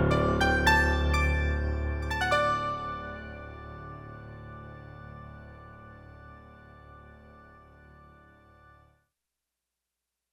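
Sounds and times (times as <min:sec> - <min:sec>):
digital synthesizer playing piano sounds: 0:00.1 - 0:04.5.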